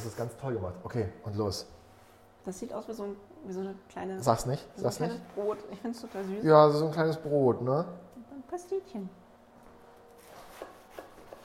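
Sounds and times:
speech: 0.0 - 1.8, 2.4 - 9.2
knife cutting the end off a roll of baked puff pastry: 10.2 - 11.4.

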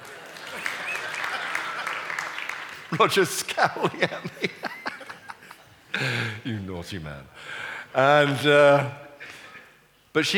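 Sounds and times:
audience applause: 0.0 - 3.2
laughter: 0.0 - 6.4
speech: 2.9 - 4.9, 6.0 - 9.0, 10.1 - 10.3.

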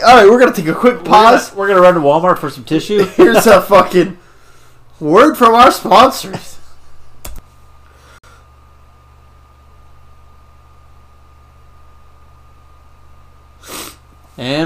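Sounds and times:
speech: 0.0 - 4.2, 5.0 - 6.6, 14.4 - 14.6
laughter: 2.8 - 4.1
person snorting to clear sinus passages: 13.6 - 14.0.

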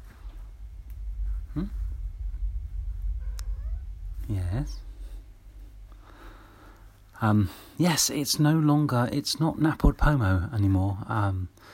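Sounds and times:
low rumbling background: 0.0 - 11.6
speech: 1.6 - 1.8, 4.3 - 4.9, 7.2 - 11.7
cat meowing: 3.2 - 3.9.

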